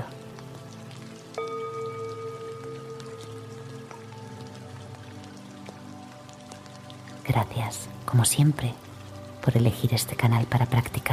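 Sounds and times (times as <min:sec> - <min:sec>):
steady soft rain: 0:00.0 - 0:11.1
resonant chime ringing: 0:01.4 - 0:04.8
speech: 0:07.3 - 0:11.1.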